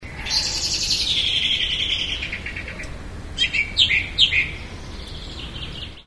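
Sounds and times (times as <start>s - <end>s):
blackbird alarm call: 0.0s - 6.0s.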